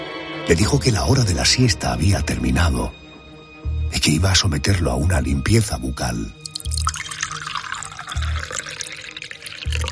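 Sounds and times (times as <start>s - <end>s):
speech: 0.5s - 3.0s, 4.0s - 6.4s
water poured into an old man's throat: 6.4s - 9.9s.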